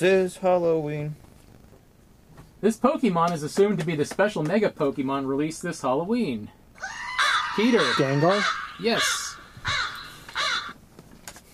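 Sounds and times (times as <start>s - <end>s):
speech: 0.0s - 1.2s, 2.6s - 7.0s, 7.6s - 9.8s
crows cawing: 6.8s - 10.8s.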